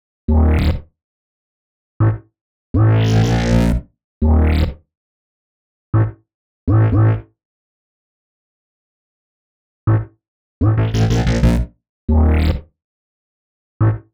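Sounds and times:
bass in B sharp minor: 0:00.3 - 0:00.9, 0:02.0 - 0:04.8, 0:05.9 - 0:07.4, 0:09.9 - 0:12.7, 0:13.8 - 0:14.1
complex electro synths: 0:10.8 - 0:11.6.

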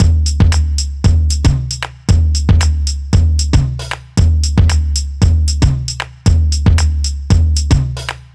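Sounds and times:
breakbeat loop: 0:00.0 - 0:08.3.

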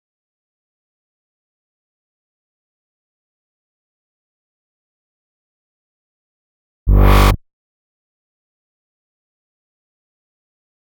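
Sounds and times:
bass in G: 0:06.9 - 0:07.4
complex electro synths: 0:06.9 - 0:07.4.

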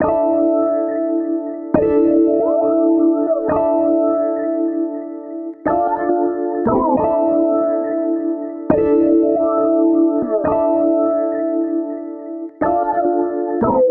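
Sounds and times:
138 BPM dubstep piano loop in A minor: 0:00.0 - 0:13.8.

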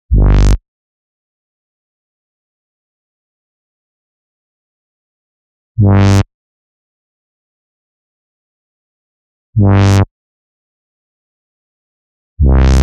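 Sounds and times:
bass: 0:00.0 - 0:00.6, 0:05.8 - 0:06.3, 0:09.6 - 0:10.1, 0:12.4 - 0:12.8.

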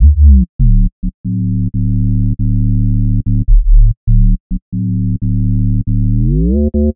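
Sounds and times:
bass loop in D: 0:00.0 - 0:06.9.

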